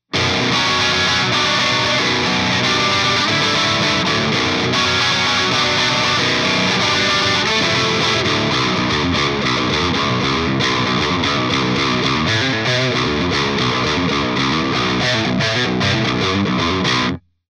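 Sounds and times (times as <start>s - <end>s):
guitar riff with effect bypassed: 0.0s - 17.2s.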